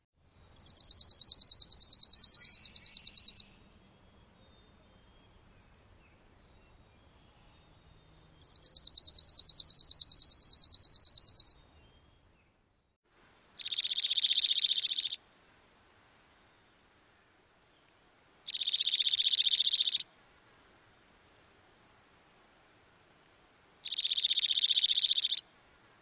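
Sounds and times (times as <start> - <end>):
chipping sparrow trilling song: 0.5 - 12.3, 13.6 - 15.2, 18.5 - 20.1, 23.8 - 25.4.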